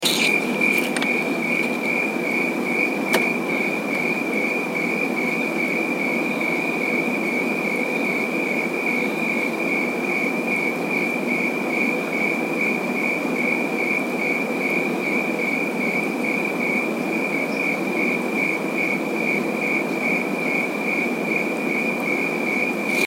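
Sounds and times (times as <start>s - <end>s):
crickets chirping at 68.1F: 0.0s - 23.0s.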